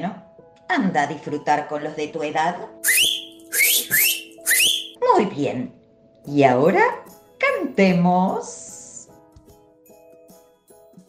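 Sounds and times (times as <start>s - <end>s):
speech: 0.1s - 3.9s, 5.1s - 8.6s
person whistling short bright upward-sliding notes: 2.8s - 5.0s.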